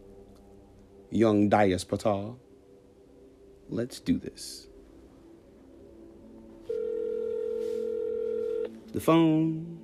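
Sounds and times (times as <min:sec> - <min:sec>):
speech: 0:01.1 - 0:02.4, 0:03.7 - 0:04.7, 0:09.0 - 0:09.8
telephone dialing tone: 0:06.7 - 0:08.8.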